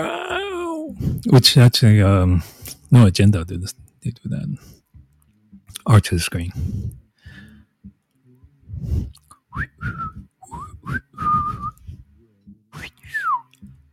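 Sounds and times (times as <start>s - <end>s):
speech: 1.2s - 4.8s, 5.8s - 7.0s, 8.8s - 11.3s
whistles and bleeps: 9.6s - 11.8s.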